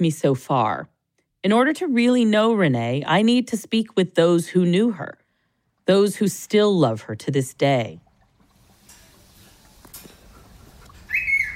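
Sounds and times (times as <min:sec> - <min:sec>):
speech: 0:00.0 - 0:05.2, 0:05.9 - 0:08.0
cockatiel whistling: 0:11.0 - 0:11.5
cockatiels chirping: 0:11.1 - 0:11.5.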